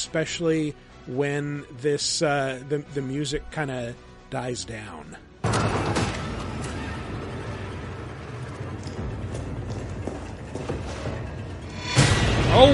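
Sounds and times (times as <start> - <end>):
speech: 0.0 - 5.9, 12.6 - 12.7
heavy door being forced open in a video game: 5.4 - 12.7
knocks and rattles: 5.4 - 12.7.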